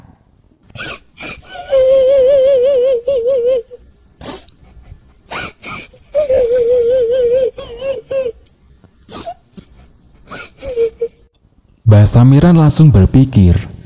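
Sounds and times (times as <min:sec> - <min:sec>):
small child crying in pain: 0:00.8 - 0:11.3
speech: 0:12.1 - 0:13.7.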